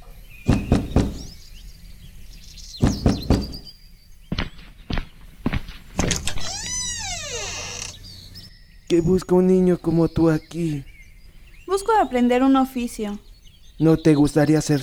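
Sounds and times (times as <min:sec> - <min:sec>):
knocking on the door of a small cabin: 0:00.4 - 0:01.3, 0:02.8 - 0:03.6
speech: 0:08.9 - 0:10.9, 0:11.8 - 0:13.2, 0:13.8 - 0:14.8.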